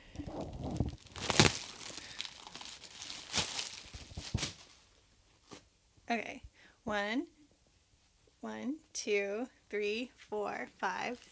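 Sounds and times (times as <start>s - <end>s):
toilet paper roll unrolling and rustling: 0.0s - 5.6s
toilet paper squares tearing: 0.3s - 4.7s
speech: 6.1s - 7.4s, 8.4s - 11.2s.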